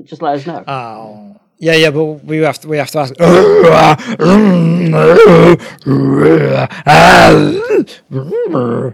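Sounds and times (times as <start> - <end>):
speech: 0.0 - 8.9
voice imitating a Wookiee growl: 3.2 - 8.9.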